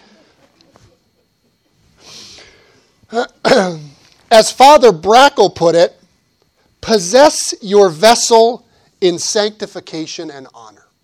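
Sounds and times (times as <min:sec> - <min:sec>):
speech: 0:03.1 - 0:03.3, 0:04.4 - 0:06.0, 0:06.9 - 0:10.8
person sneezing: 0:03.1 - 0:04.0.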